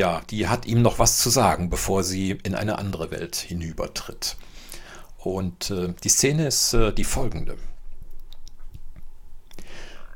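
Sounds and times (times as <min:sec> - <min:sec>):
speech: 0:00.0 - 0:04.6, 0:05.2 - 0:07.7
faint hiss: 0:00.0 - 0:10.1
lip smacking as a tongue wets dry lips: 0:07.9 - 0:10.1.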